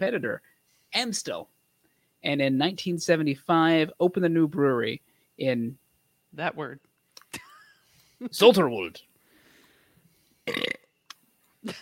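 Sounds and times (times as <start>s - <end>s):
speech: 0.0s - 1.6s, 2.2s - 7.4s, 8.2s - 9.1s, 10.4s - 10.8s, 11.6s - 11.8s
burp: 10.4s - 10.9s.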